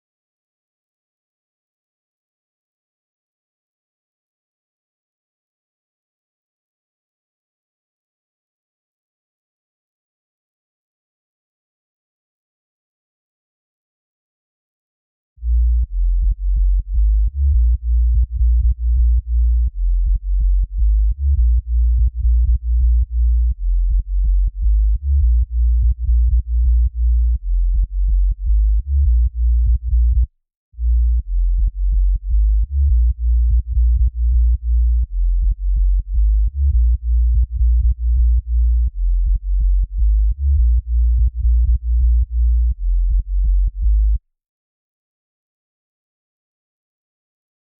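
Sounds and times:
sub bass in future house: 0:15.4 - 0:44.2.

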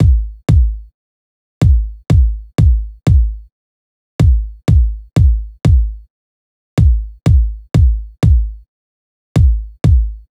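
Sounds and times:
hip hop kick drum: 0:00.0 - 0:00.9, 0:01.6 - 0:03.5, 0:04.2 - 0:06.1, 0:06.8 - 0:08.7, 0:09.4 - 0:10.3.

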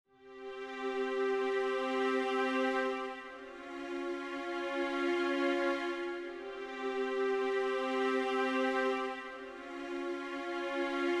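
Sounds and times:
strings in C minor in hip hop exotica style: 0:00.1 - 0:11.1.

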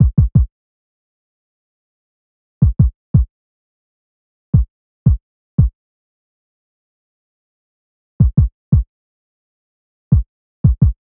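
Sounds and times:
hip hop kick drum in E minor: 0:00.0 - 0:00.5, 0:02.6 - 0:03.3, 0:04.6 - 0:05.8, 0:08.2 - 0:08.9, 0:10.1 - 0:11.0.

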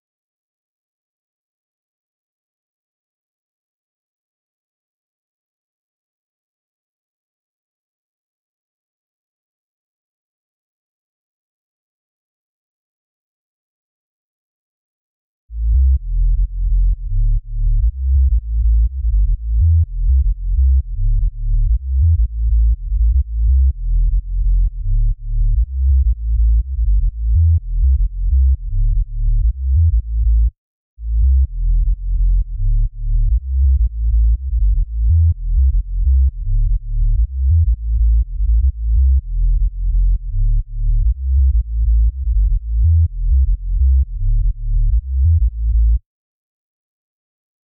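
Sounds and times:
sub bass in A for future house music: 0:15.5 - 0:46.0.

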